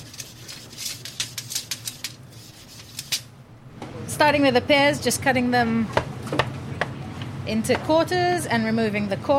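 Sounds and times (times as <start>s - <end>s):
kitchen extraction fan motor humming: 0.0s - 9.3s
speech: 4.2s - 6.5s, 7.5s - 9.3s.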